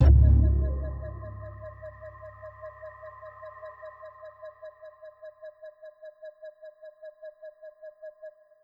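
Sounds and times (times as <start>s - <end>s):
boom: 0.0s - 2.2s.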